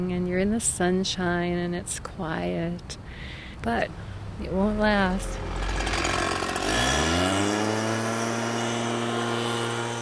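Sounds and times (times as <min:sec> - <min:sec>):
speech: 0:00.0 - 0:05.6
leaf blower running in a yard: 0:05.3 - 0:09.9.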